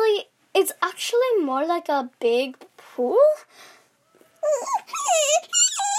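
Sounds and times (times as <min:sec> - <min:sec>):
speech: 0:00.6 - 0:03.8, 0:04.4 - 0:05.9
dog whining and vocalizing: 0:04.1 - 0:05.9.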